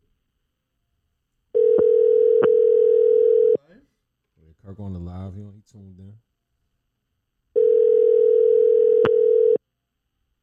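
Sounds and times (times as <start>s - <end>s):
phone dial tone during a phone call being placed: 1.6s - 3.6s, 7.6s - 9.6s
speech: 4.8s - 6.3s.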